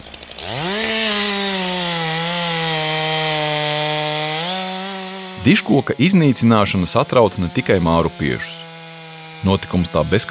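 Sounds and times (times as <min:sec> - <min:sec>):
chainsaw starter pulls: 0:00.0 - 0:01.3, 0:04.5 - 0:10.2
chainsaw sawing down an oak tree: 0:00.0 - 0:10.2
speech: 0:05.4 - 0:08.6, 0:09.4 - 0:10.2.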